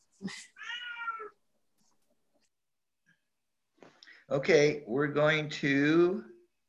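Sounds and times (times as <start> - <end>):
speech: 0.2 - 0.5, 4.3 - 6.3
cat meowing: 0.6 - 1.4.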